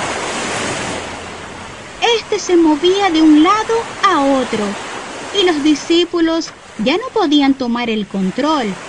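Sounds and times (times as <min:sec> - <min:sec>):
ocean waves crashing in churning surf: 0:00.0 - 0:08.8
speech: 0:02.0 - 0:08.8.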